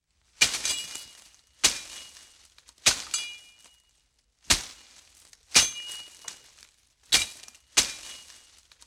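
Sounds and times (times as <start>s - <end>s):
machete whacking bush: 0.4s - 2.2s, 2.8s - 3.2s, 4.5s - 4.8s, 7.1s - 8.4s.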